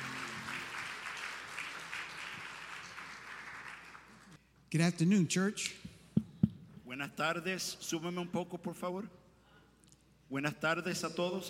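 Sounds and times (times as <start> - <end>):
church congregation applauding during a service: 0.0 - 4.4
speech: 4.7 - 5.9, 7.0 - 9.2, 10.3 - 11.4.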